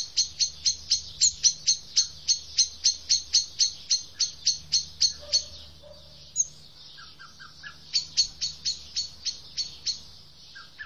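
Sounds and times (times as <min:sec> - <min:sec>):
Eurasian blackbird Turdus merula giving sharp high ticks: 0:00.0 - 0:10.8.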